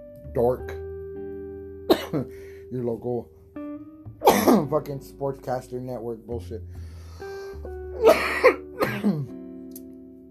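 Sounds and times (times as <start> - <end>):
speech: 0.4 - 0.8, 2.1 - 3.4, 4.3 - 6.8, 8.0 - 9.3
person coughing after smoking weed: 1.9 - 2.3, 4.2 - 4.7, 8.0 - 9.3
throat clearing: 8.0 - 9.3.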